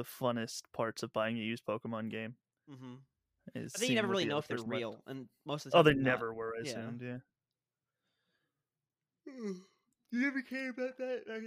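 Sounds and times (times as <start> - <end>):
speech: 0.0 - 7.3, 9.3 - 11.4
drawn-out breathy yawn: 2.7 - 3.1, 9.3 - 9.8.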